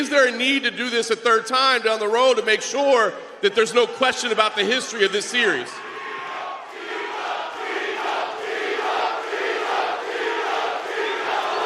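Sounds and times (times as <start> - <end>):
speech: 0.0 - 5.9
big crowd roaring and cheering at a UFC fight: 5.8 - 11.6.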